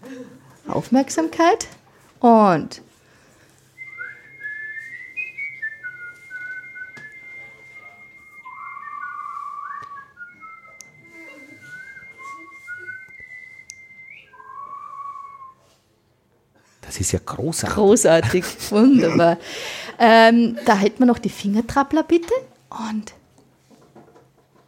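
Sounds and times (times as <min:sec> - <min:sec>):
speech: 0:00.3 - 0:02.9, 0:17.0 - 0:23.2
several people whistling together: 0:03.8 - 0:15.6
laughter: 0:18.3 - 0:19.4.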